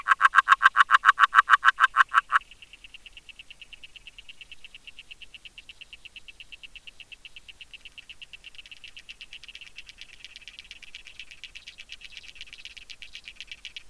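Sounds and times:
agile frog Rana dalmatina clucking underwater: 0.0s - 2.4s.

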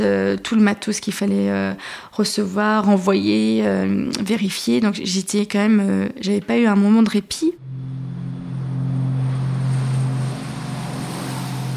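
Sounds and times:
speech: 0.0s - 7.6s
propeller airplane engine droning during takeoff: 7.6s - 11.7s.

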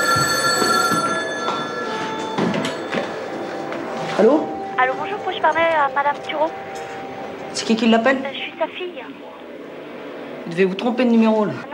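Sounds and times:
telephone ringing with a metallic bell trill: 0.0s - 7.4s
speech: 4.2s - 6.7s, 7.6s - 9.4s, 10.5s - 11.7s.

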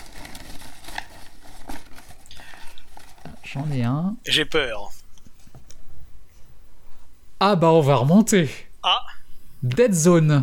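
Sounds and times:
small piece of paper being pulled out and unfolded: 0.0s - 3.8s
speech: 3.5s - 5.0s, 7.4s - 10.4s.

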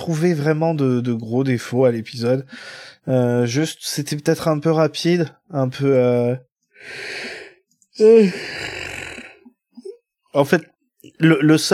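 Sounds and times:
speech: 0.0s - 7.3s, 8.0s - 8.9s, 10.3s - 11.7s
long breathy yawn: 8.0s - 10.0s.

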